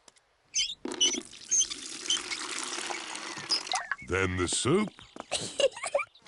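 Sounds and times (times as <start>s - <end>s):
water pouring into a bucket to make bubble mixture: 1.2s - 3.8s
speech: 4.1s - 5.7s.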